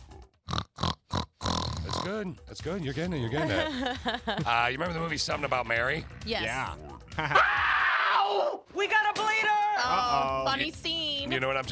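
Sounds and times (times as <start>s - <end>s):
person imitating pig oinks: 0.0s - 2.2s
speech: 2.1s - 7.6s, 8.8s - 11.7s
laughter: 3.4s - 4.7s, 7.1s - 7.4s.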